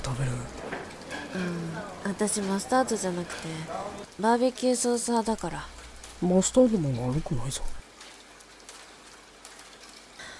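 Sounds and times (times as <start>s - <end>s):
persistent rain falling outside a fast-food restaurant: 0.0s - 10.3s
speech: 0.1s - 7.8s.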